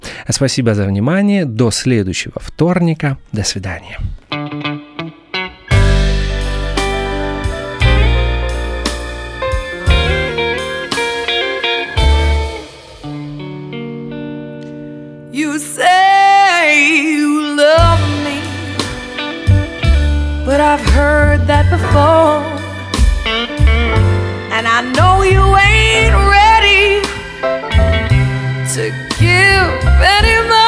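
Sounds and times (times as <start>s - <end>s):
speech: 0.3s - 4.3s
slow soul ballad with warm chords and deep bass: 4.4s - 30.6s.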